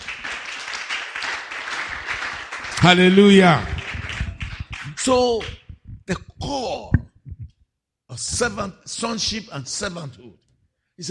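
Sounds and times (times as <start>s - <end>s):
congregation applauding at a church service: 0.0s - 5.7s
speech: 2.8s - 3.7s, 5.0s - 7.0s, 8.2s - 10.4s.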